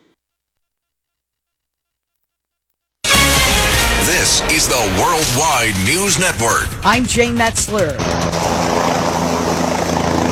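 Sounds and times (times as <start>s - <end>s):
helicopters flying during a flood rescue search: 3.1s - 10.3s
speech: 4.3s - 8.5s.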